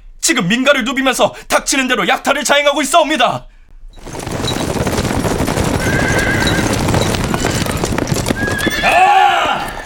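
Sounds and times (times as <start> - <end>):
speech: 0.3 - 3.5
many horse hooves pounding in a gallop: 3.9 - 9.8
horse neighing: 5.7 - 9.8.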